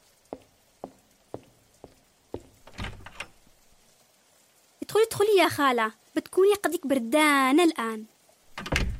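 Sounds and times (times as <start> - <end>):
faint steady hiss: 0.0 - 8.9
door rattling and scraping as it opens: 2.6 - 3.4, 8.5 - 8.9
speech: 5.1 - 8.1.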